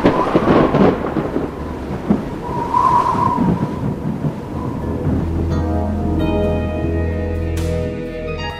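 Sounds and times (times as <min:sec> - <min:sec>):
deep rolling thunder: 0:00.0 - 0:08.1
heavy rainstorm pouring down: 0:00.0 - 0:08.5
sustained music: 0:04.6 - 0:08.5.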